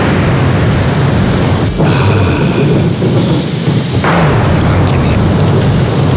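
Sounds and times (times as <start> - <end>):
deep rumble of thunder: 0.0 - 6.1
steady loud autumn rain: 0.0 - 6.1.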